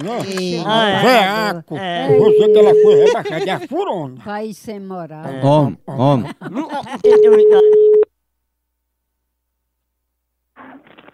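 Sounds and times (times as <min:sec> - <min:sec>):
laughter: 0:00.0 - 0:03.8, 0:05.2 - 0:08.0
speech: 0:00.0 - 0:07.8
telephone line tone as a call is placed: 0:02.1 - 0:03.2, 0:07.1 - 0:08.1.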